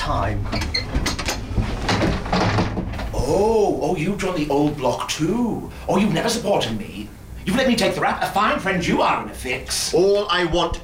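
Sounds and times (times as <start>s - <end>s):
short rattles and knocks: 0.0s - 3.2s
door opening into a pub theatre: 0.0s - 3.4s
speech: 0.1s - 0.8s, 3.3s - 10.8s.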